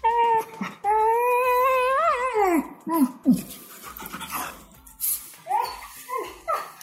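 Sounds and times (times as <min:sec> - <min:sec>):
frightened dog whining: 0:00.0 - 0:03.6, 0:05.4 - 0:06.8
frightened dog whimpering: 0:00.0 - 0:04.8, 0:05.4 - 0:06.8
quick anxious breaths of frightened dog: 0:03.4 - 0:06.2.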